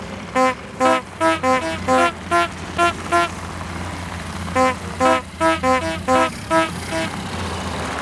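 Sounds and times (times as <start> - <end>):
car engine rumbling while driving past: 0.0 - 7.3
early automobile horn honking: 0.4 - 3.4, 4.6 - 7.2.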